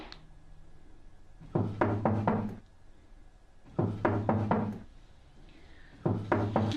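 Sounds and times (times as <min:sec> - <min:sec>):
heavy knocking on a wooden door: 0:01.5 - 0:02.5, 0:03.7 - 0:04.9, 0:06.1 - 0:06.7.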